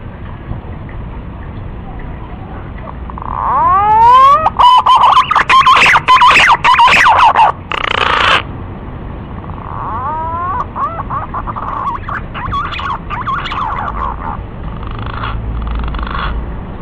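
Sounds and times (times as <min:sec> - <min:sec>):
green pigeon lure call whistling: 0:03.2 - 0:08.4, 0:09.8 - 0:14.4.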